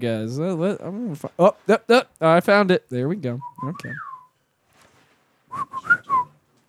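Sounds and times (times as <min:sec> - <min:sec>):
speech: 0:00.0 - 0:04.1
person whistling imitating a robot droid's beeps: 0:03.4 - 0:04.3, 0:05.5 - 0:06.3.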